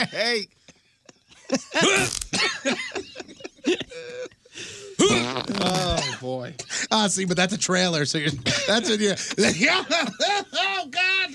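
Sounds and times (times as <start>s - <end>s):
people chuckling and snickering: 0.0s - 0.4s, 1.1s - 7.1s, 8.2s - 11.3s
speech: 0.0s - 0.6s, 1.5s - 11.3s
person clearing throat: 1.8s - 2.6s, 5.0s - 6.3s
person coughing: 1.8s - 2.6s, 5.0s - 6.4s, 8.4s - 9.6s
fart: 1.9s - 2.4s, 5.0s - 6.1s.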